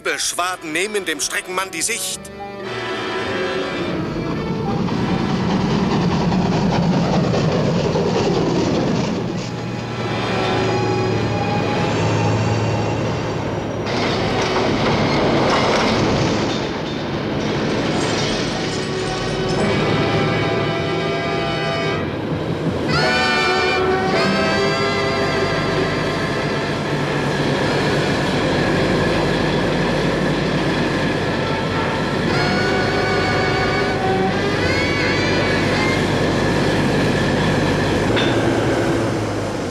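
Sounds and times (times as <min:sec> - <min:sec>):
train starting to move on railway tracks beyond a tunnel in fog: 0:00.0 - 0:39.7
speech: 0:00.1 - 0:02.8.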